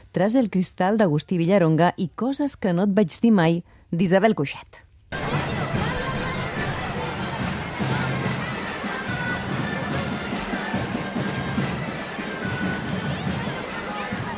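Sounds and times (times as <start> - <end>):
speech: 0.2 - 4.9
dense crowd murmuring and chattering in a packed square at a festival: 5.1 - 14.3
louder shouts rising from a festival crowd: 5.2 - 14.3.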